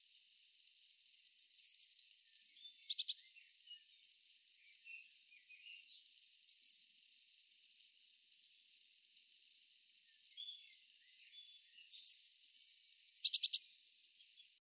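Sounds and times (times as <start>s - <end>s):
Eurasian blue tit Cyanistes caeruleus singing trilled phrase with buzzy ending: 1.4s - 3.8s, 5.6s - 7.4s, 10.4s - 13.6s.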